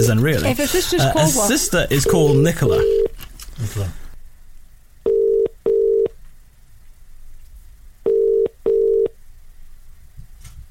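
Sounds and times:
speech: 0.0s - 4.0s
quiet hiss: 0.0s - 10.6s
telephone ringing tone heard down the line: 5.1s - 6.1s, 8.1s - 9.1s.

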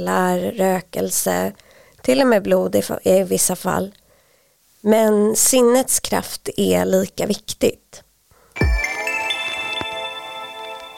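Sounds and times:
speech: 0.0s - 4.0s, 4.8s - 8.0s
telephone ring tone as an outgoing call is placed: 8.6s - 10.9s.

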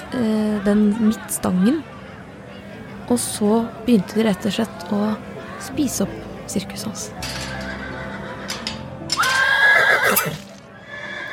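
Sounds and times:
speech: 0.1s - 1.9s, 3.1s - 7.4s
horse neighing loudly: 7.5s - 11.3s.

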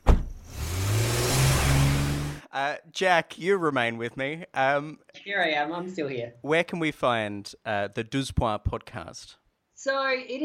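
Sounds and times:
car engine starting and revving as the car pulls away: 0.3s - 2.5s
speech: 2.6s - 10.4s.

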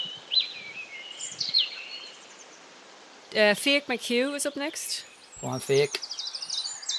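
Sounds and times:
birds whistling on a hilltop in rural Germany: 0.0s - 2.6s, 4.5s - 6.9s
bird chirping on a hilltop in rural Germany: 0.0s - 6.9s
speech: 3.3s - 6.1s.

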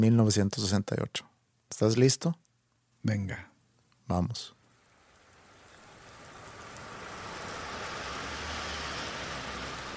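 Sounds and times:
speech: 0.0s - 2.4s, 3.0s - 3.5s, 4.1s - 4.6s
passing traffic rumble on a city street: 4.8s - 9.9s
rain falling on a city street: 5.0s - 9.9s.

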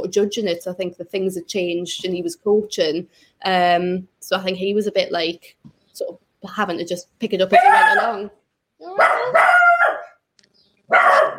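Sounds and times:
speech: 0.1s - 9.4s
dog barking in the next room: 7.6s - 8.2s, 9.0s - 10.2s, 10.9s - 11.3s.

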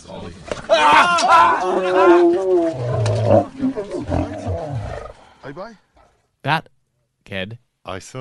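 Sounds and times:
speech: 0.0s - 4.6s, 5.4s - 8.1s
lion roaring and growling while biting a man's hand at a nature reserve: 1.1s - 5.3s.

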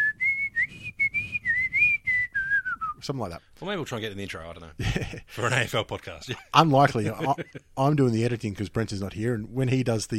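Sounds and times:
person whistling a short lively basketball warm-up tune: 0.0s - 3.0s
speech: 3.0s - 10.1s.

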